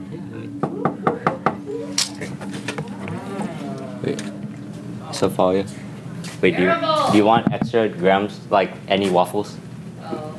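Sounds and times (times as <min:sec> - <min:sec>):
low buzzing hum: 0:00.0 - 0:10.3
speech: 0:04.1 - 0:04.3, 0:05.1 - 0:05.8, 0:06.4 - 0:09.6
sharp knocks: 0:07.3 - 0:07.8.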